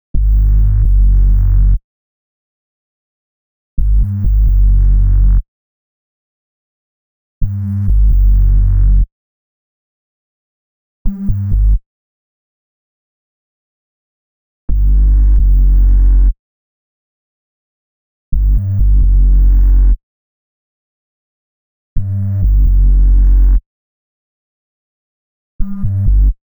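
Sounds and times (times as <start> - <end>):
132 BPM F# minor UK garage bass loop: 0.2 - 1.8, 3.8 - 5.4, 7.6 - 9.0, 14.7 - 16.3, 18.4 - 20.0, 22.0 - 23.6, 25.6 - 26.4.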